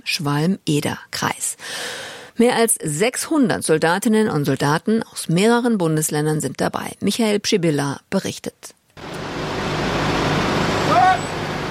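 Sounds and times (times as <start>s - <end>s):
speech: 0.0s - 8.8s
convoy of heavy military trucks rumbling during an army exercise in Hesse Germany: 9.0s - 11.6s
high brake squeal of military truck: 9.1s - 11.6s.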